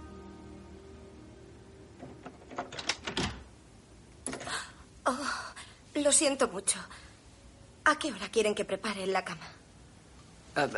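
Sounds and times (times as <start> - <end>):
door latch and handle clicks: 2.0 - 3.5
speech: 6.0 - 7.0, 7.9 - 9.6, 10.6 - 10.7.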